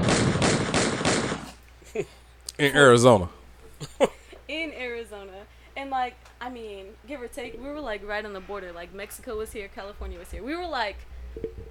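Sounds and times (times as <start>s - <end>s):
loud sharp gunshots echoing: 0.0s - 1.6s
speech: 2.0s - 11.6s.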